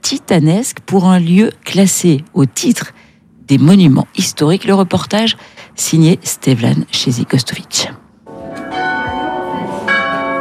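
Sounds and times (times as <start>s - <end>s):
speech: 0.1s - 8.0s
two large church bells ringing in a renovated monastery tower: 8.3s - 10.3s.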